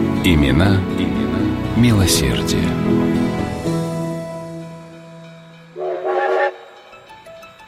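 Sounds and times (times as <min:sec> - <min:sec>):
speech: 0:00.2 - 0:03.6
steam train rumbling as it slows: 0:04.6 - 0:07.6
steam locomotive whistle: 0:05.8 - 0:07.1.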